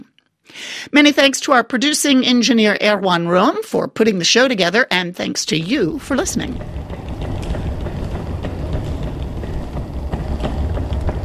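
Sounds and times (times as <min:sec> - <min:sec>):
speech: 0:00.9 - 0:07.0
suitcase wheels rolling along a street in Paris: 0:05.8 - 0:11.2.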